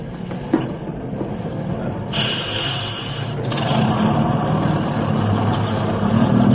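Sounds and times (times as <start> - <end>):
bus engine idling on a street: 0.0 - 6.5
bus air brakes hissing: 2.1 - 3.5.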